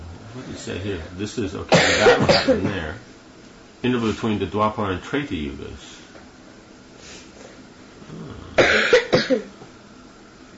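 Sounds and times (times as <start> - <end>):
speech: 0.4 - 3.2, 3.8 - 6.0
person coughing: 1.7 - 2.9, 8.6 - 9.5.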